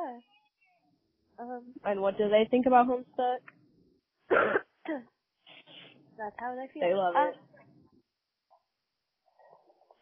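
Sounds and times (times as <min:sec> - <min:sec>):
speech: 0:01.4 - 0:03.6, 0:04.3 - 0:05.1, 0:06.2 - 0:07.5
sick person coughing harshly: 0:04.3 - 0:05.0.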